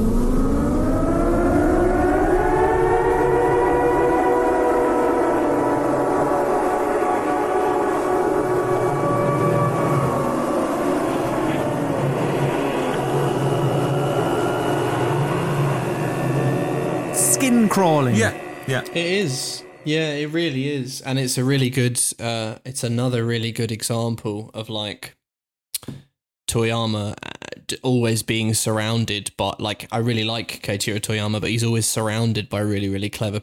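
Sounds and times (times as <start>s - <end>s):
eerie droning video game siren: 0.0s - 20.9s
speech: 18.9s - 25.2s, 26.5s - 33.4s.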